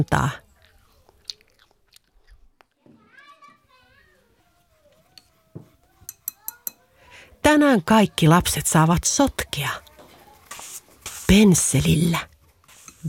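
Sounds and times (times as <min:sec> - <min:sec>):
speech: 0:00.0 - 0:00.4, 0:07.4 - 0:09.8, 0:11.3 - 0:12.3
crunchy bites and chewing of an apple: 0:00.5 - 0:02.8
child's voice and playful vocal sounds: 0:02.8 - 0:07.2.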